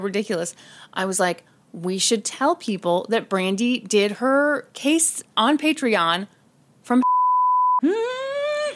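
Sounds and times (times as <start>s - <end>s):
speech: 0.0s - 7.0s
censor bleep tone: 7.0s - 7.9s.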